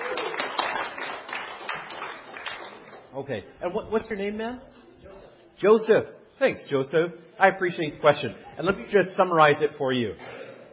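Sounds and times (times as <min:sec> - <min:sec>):
audience applause after a question: 0:00.0 - 0:03.1
speech: 0:03.2 - 0:04.8, 0:05.6 - 0:10.4.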